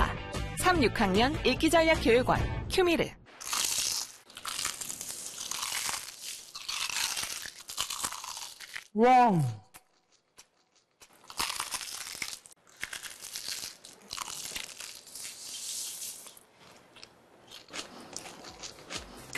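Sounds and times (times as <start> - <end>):
speech: 0.7 - 3.2, 9.0 - 9.6
chewing crispy fried chicken: 3.4 - 8.9, 9.6 - 19.3
crunching bites of crispy fried chicken: 3.4 - 9.0, 9.7 - 19.3.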